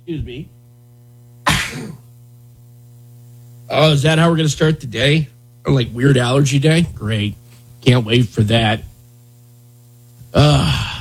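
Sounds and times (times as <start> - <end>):
faint steady hum: 0.0 - 11.0
speech: 0.1 - 0.6, 3.7 - 8.9, 10.3 - 10.9
single sharp human sneeze: 1.5 - 2.1.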